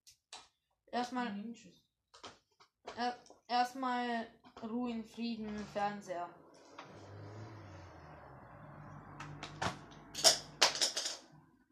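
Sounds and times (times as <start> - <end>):
speech: 0.9 - 1.9, 2.9 - 6.4
thrown pens clattering against a hard surface: 10.2 - 11.3.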